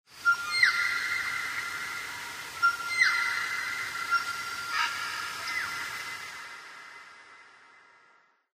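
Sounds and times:
bird call: 0.2 - 1.8, 2.6 - 5.9.

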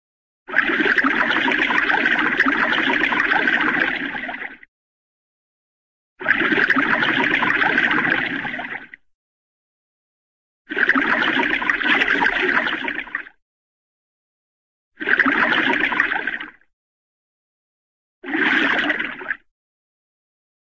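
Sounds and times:
slow underwater water sound for cartoon: 0.5 - 4.7, 6.2 - 9.1, 10.7 - 13.4, 15.0 - 16.7, 18.2 - 19.5.

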